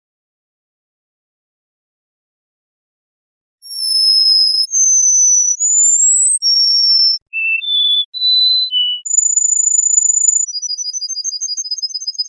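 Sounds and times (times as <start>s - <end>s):
canary song: 3.6s - 12.2s.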